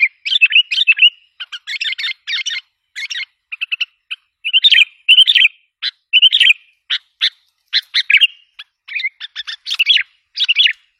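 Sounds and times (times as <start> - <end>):
sooty-headed bulbul singing: 0.0 - 10.9.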